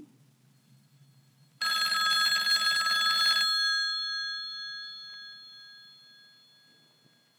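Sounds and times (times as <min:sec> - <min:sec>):
faint low hum: 0:00.0 - 0:02.4, 0:03.4 - 0:07.3
old-fashioned telephone bell ringing: 0:01.6 - 0:07.3.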